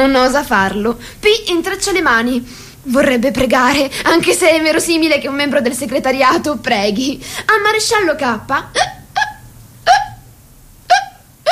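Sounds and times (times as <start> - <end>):
speech: 0.0 - 9.0
hiccups: 8.8 - 10.3, 10.9 - 11.5.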